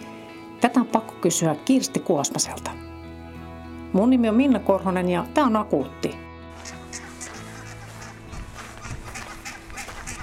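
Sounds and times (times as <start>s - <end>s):
speech: 0.6s - 2.9s, 3.9s - 6.2s
geese honking: 6.6s - 10.2s.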